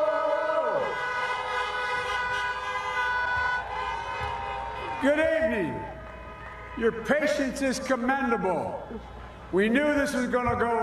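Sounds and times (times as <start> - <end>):
several horns honking outside: 0.6 - 7.4
speech: 5.0 - 6.0, 6.8 - 10.8.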